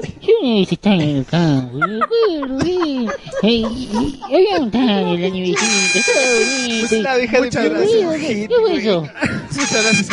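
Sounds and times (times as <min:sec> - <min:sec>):
speech: 0:00.0 - 0:10.1
laughter: 0:00.9 - 0:10.1
air horn buzzer: 0:05.6 - 0:07.4, 0:09.6 - 0:10.1.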